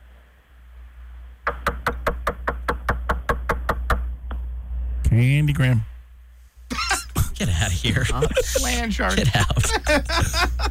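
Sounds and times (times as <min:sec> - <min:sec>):
low hum: 0:00.0 - 0:10.7
loud knocks on a door: 0:01.5 - 0:04.0
speech: 0:05.2 - 0:05.9, 0:07.4 - 0:10.7
laughter: 0:06.7 - 0:10.7.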